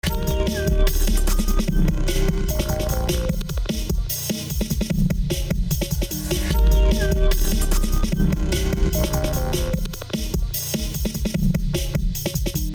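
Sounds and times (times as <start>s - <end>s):
drum and bass music: 0.0s - 12.7s.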